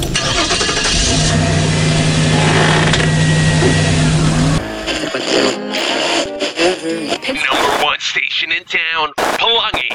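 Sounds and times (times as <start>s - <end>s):
car engine in the jungle cranking and starting: 0.0s - 4.8s
quieter noise in the jungle: 6.1s - 9.9s
speech: 8.2s - 9.9s.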